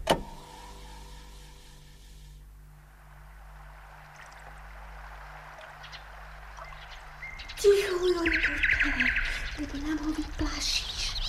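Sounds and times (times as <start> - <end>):
steady low engine-like hum: 0.0 - 11.2
nightingale singing at sunset: 3.0 - 11.2.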